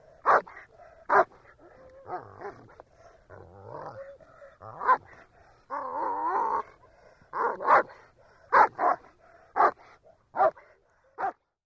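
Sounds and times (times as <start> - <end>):
German Shepherd dog barking: 0.2 - 2.8, 4.7 - 5.2, 7.3 - 11.5.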